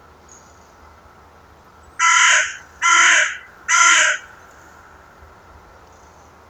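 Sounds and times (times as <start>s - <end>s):
carrion crow Corvus corone uttering hoarse grating caws: 2.0s - 5.1s.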